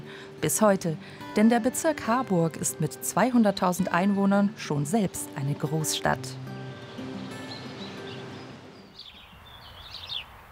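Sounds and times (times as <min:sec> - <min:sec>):
speech: 0:00.4 - 0:06.5
birds chirping and tweeting outdoors in a park: 0:04.9 - 0:10.4.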